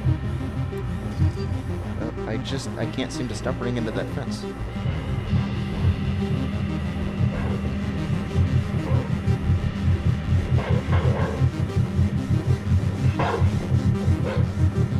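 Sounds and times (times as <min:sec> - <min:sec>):
throbbing electronic hum: 0:00.0 - 0:14.9
speech: 0:02.3 - 0:05.0
synthetic dog barks from a video game: 0:13.2 - 0:13.5.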